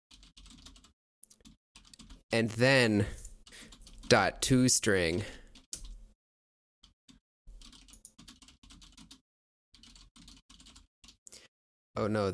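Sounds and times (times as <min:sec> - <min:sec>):
typing on a computer keyboard: 0:00.1 - 0:02.2, 0:03.4 - 0:04.2, 0:05.5 - 0:06.0, 0:06.8 - 0:09.2, 0:09.8 - 0:11.2
speech: 0:02.3 - 0:03.2, 0:04.1 - 0:05.4, 0:12.0 - 0:12.3.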